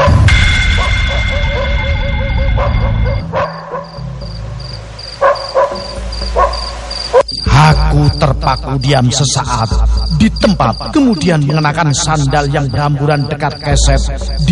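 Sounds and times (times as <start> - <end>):
pack of dogs barking noisily at a nearby house: 0.0 - 4.2, 5.1 - 7.3
speech: 8.4 - 14.5.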